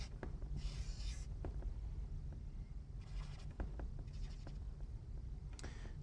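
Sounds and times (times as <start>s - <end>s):
pen scratching across paper drawing a lion: 0.0s - 1.4s, 3.0s - 4.7s
steady low hum: 0.0s - 6.0s.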